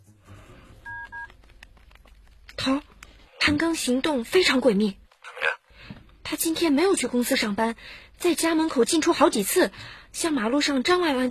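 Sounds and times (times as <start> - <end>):
telephone touch-tone dialling as a call is placed: 0.9 - 1.3
speech: 2.6 - 2.8, 3.4 - 5.0, 6.3 - 11.2.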